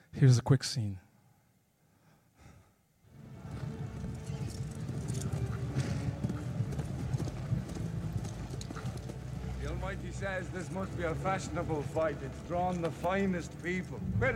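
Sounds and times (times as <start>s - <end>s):
speech: 0.2s - 1.0s, 9.8s - 14.3s
stallion hooves clip-clopping: 3.2s - 14.3s.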